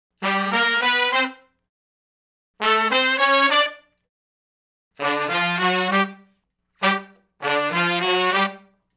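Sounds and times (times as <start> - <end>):
R&B horn section riff in unison in G: 0.2 - 1.5, 2.6 - 3.9, 5.0 - 8.7.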